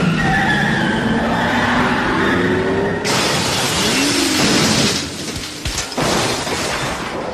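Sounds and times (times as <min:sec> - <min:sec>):
car tires screeching in a long skid: 0:00.0 - 0:05.1
car crash with crunching impact and shattering debris: 0:03.0 - 0:07.3.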